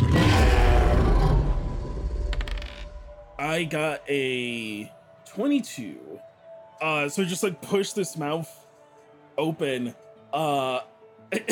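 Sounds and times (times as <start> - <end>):
huge deep rumbling monster roar with growling tail: 0.0 - 2.4
speech: 3.6 - 8.6, 9.4 - 11.5.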